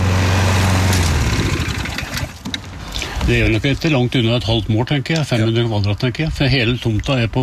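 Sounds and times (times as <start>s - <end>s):
petrol push lawn mower running over grass on a large lawn: 0.0s - 2.8s
speech: 3.3s - 7.4s.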